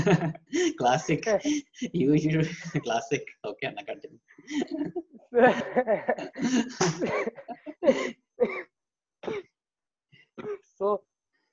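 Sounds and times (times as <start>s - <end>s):
laughter: 0.0s - 1.0s, 2.4s - 3.2s, 4.5s - 8.1s
speech: 0.0s - 8.6s, 10.8s - 11.1s
person throat-clearing and coughing: 6.1s - 9.5s.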